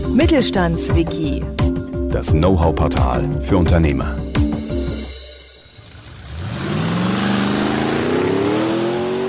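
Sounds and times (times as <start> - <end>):
speech: 0.2 - 4.2
car engine starting and driving off: 5.1 - 9.2.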